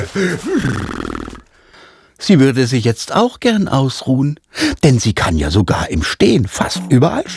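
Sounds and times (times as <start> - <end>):
speech: 0.1 - 1.1, 2.3 - 7.3
short voiced bursts: 6.6 - 7.3.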